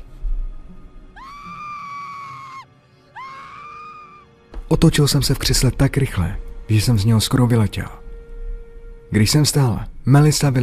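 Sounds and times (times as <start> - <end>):
woman screaming: 1.2 - 4.3
speech: 4.7 - 8.0, 9.1 - 10.6.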